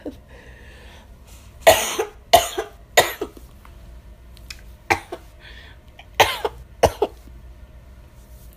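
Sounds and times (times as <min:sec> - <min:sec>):
harsh coughing: 0:01.6 - 0:03.4, 0:04.9 - 0:05.3, 0:06.2 - 0:07.2.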